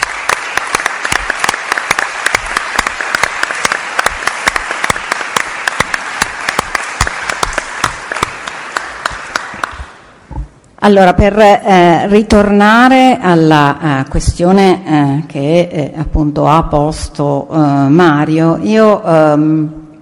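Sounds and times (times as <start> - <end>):
room full of people applauding: 0.0 - 10.0
speech: 10.8 - 19.8.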